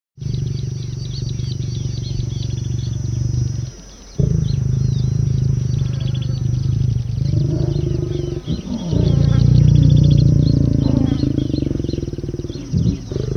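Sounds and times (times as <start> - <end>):
animal mating call of deep moaning roars: 0.2 - 13.3.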